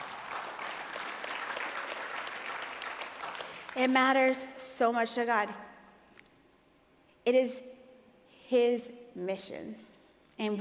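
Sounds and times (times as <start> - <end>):
audience applauding during a sermon: 0.0 - 3.8
speech: 3.8 - 5.7, 7.2 - 7.7, 8.5 - 10.5.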